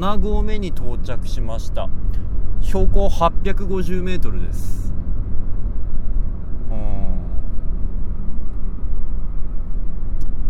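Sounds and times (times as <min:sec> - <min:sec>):
speech: 0:00.0 - 0:04.9
trucks passing on a mountain pass road: 0:00.0 - 0:10.4.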